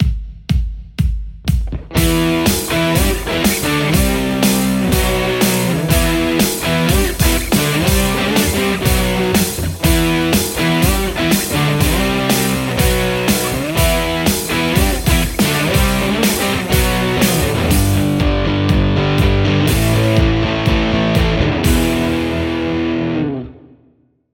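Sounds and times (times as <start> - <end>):
white strat electric guitar: 1.7 - 23.9.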